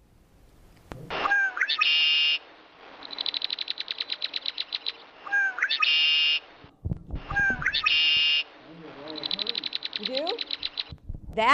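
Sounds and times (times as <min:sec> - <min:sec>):
red-winged blackbird call with buzzy trill: 0:01.2 - 0:06.5, 0:07.3 - 0:11.0
red-winged blackbird chattering: 0:03.0 - 0:06.1, 0:07.3 - 0:10.9
speech: 0:11.4 - 0:11.5.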